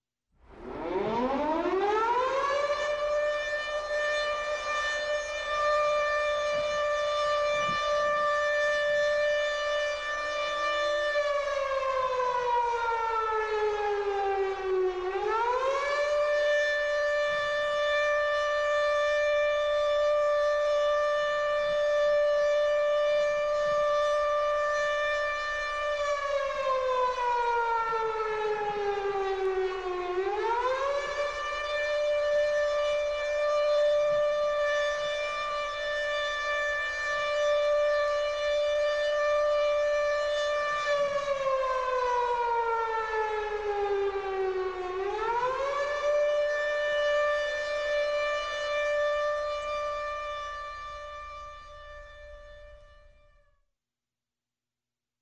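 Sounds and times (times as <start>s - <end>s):
air raid siren sounding the all clear: 0.3s - 53.6s.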